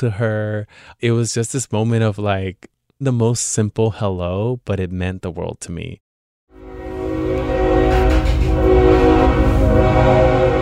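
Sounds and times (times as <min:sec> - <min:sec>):
speech: 0:00.0 - 0:06.0
freight train rumbling past: 0:06.6 - 0:10.5.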